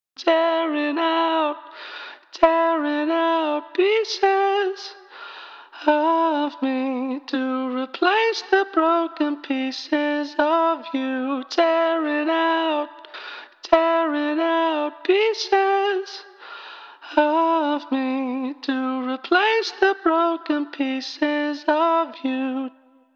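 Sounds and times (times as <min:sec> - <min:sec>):
person singing: 0:00.2 - 0:05.1, 0:05.7 - 0:16.4, 0:17.0 - 0:22.7.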